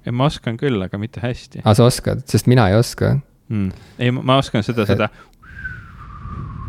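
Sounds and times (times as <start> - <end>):
speech: 0.0 - 5.4
person whistling a thin breathy note: 5.4 - 6.6.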